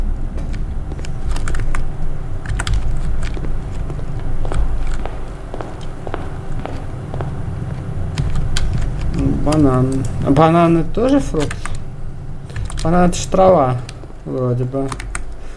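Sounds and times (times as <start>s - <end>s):
constant low rumble of wind or traffic: 0.0s - 15.5s
footsteps crunching while walking to a workshop: 0.3s - 10.8s
speech: 9.6s - 11.7s, 12.8s - 15.1s.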